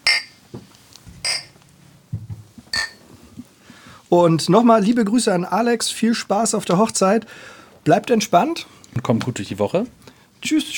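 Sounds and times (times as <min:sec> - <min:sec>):
glasses clinking in a toast: 0:01.2 - 0:01.6, 0:02.7 - 0:03.0
speech: 0:04.1 - 0:10.7.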